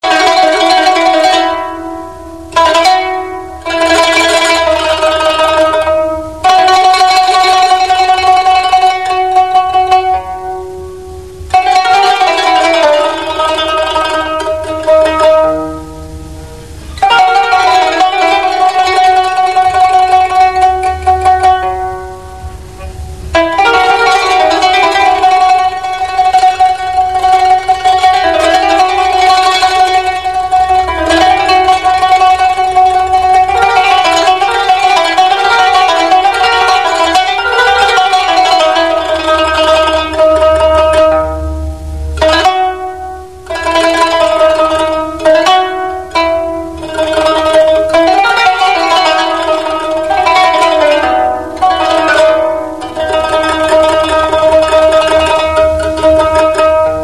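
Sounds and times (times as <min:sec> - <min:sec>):
qanun instrumental: 0:00.0 - 0:57.0.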